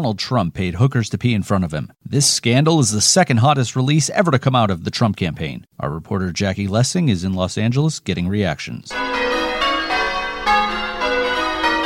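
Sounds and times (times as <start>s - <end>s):
speech: 0.0s - 9.7s
bells pealing in the Los Feliz neighborhood of Los Angeles: 8.9s - 11.8s.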